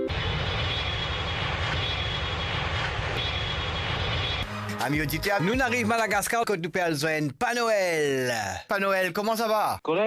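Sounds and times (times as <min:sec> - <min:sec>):
airplane taking off with engine roar: 0:00.1 - 0:04.6
speech: 0:04.8 - 0:10.0.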